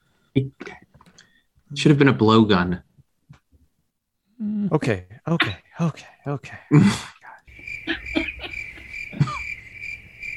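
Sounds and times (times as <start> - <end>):
speech: 0.4 - 0.8, 1.7 - 2.9, 4.7 - 7.2
crickets chirping in a high trill: 7.4 - 10.3
laughter: 7.8 - 9.6.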